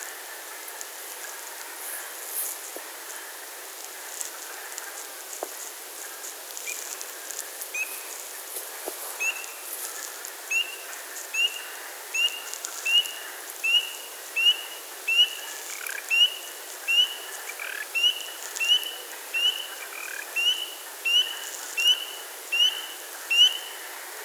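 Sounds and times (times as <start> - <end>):
Pseudacris crucifer calling: 7.7 - 8.2, 9.1 - 23.8.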